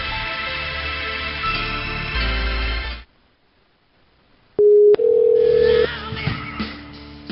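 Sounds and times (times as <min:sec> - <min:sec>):
music: 0:00.0 - 0:03.1, 0:05.8 - 0:07.2
telephone dial tone on a red back line: 0:04.6 - 0:05.9.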